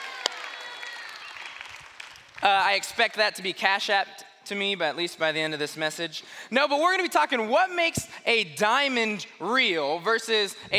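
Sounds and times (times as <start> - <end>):
crowd applauding: 0.0 - 2.5
speech: 2.4 - 10.7.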